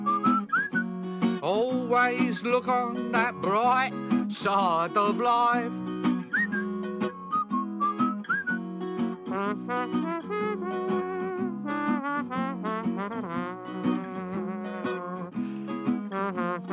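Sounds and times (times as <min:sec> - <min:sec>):
person whistling a bouncy jaunty melody: 0:00.0 - 0:01.0, 0:06.2 - 0:08.8
steady instrumental backing music: 0:00.0 - 0:16.7
speech: 0:01.4 - 0:06.0, 0:09.4 - 0:11.0
trombone-like sound: 0:09.3 - 0:15.3, 0:16.0 - 0:16.7.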